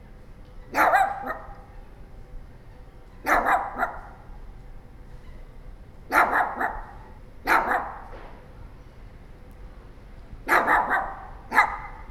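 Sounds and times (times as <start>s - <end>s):
small dog barking in sharp yaps: 0.7s - 1.7s, 3.2s - 4.2s, 6.1s - 8.1s, 10.4s - 12.0s.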